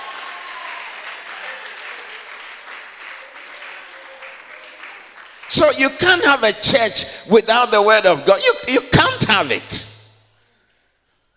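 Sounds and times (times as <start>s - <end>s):
audience applause: 0.0s - 6.6s
speech: 5.5s - 9.9s.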